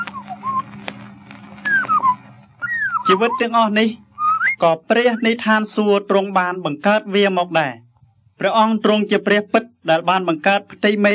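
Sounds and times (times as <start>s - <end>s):
steady low hum: 0.0s - 9.9s
birds singing: 1.7s - 3.5s
speech: 3.1s - 4.0s, 4.6s - 7.8s, 8.4s - 11.1s.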